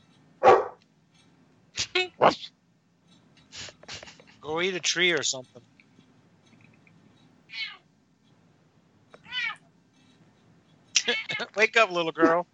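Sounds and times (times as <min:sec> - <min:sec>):
low hum: 0:00.0 - 0:12.5
female dog barking: 0:00.4 - 0:00.8
speech: 0:02.0 - 0:02.6, 0:04.4 - 0:05.7, 0:11.6 - 0:12.5
cat meowing loudly: 0:07.5 - 0:07.8, 0:09.2 - 0:09.6.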